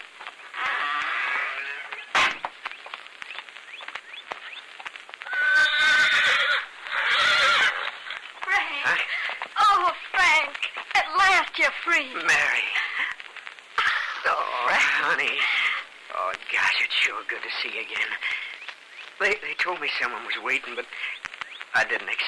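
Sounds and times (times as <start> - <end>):
horse hooves clip-clopping: 0.0 - 22.2
horse whinnying with loud wavering neighs: 0.5 - 2.1, 5.2 - 8.0
speech: 11.9 - 12.7, 17.0 - 18.4, 19.2 - 21.1, 21.8 - 22.2.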